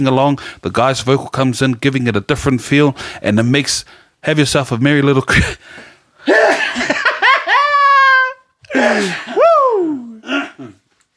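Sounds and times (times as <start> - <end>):
speech: 0.0 - 6.9, 8.7 - 9.4
person sneezing: 6.2 - 6.8, 8.7 - 10.9
laughter: 6.3 - 8.4.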